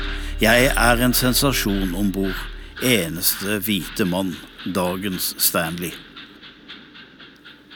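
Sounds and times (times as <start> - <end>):
soft train rumble and hiss: 0.0 - 7.7
speech: 0.4 - 6.1
train wheels clickety-clack over rail joints: 2.8 - 7.7.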